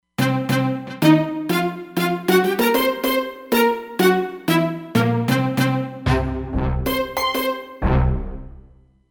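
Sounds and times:
tutti on a Roland Fantom XR synthesizer: 0.2 - 8.7.

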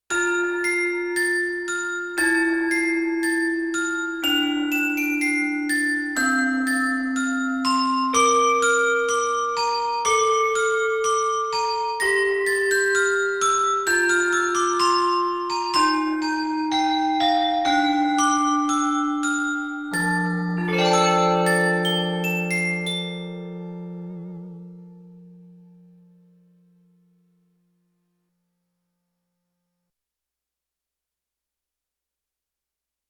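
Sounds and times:
handbell on a synthesizer sampler: 0.1 - 24.4.

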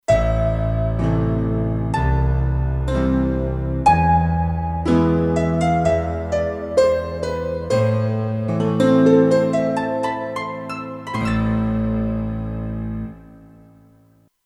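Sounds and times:
haunted piano: 0.1 - 14.0.

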